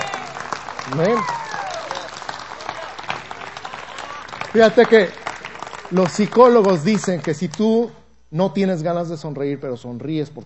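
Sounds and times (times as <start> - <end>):
congregation applauding: 0.0 - 7.7
speech: 0.9 - 1.4, 4.5 - 5.2, 5.9 - 10.4.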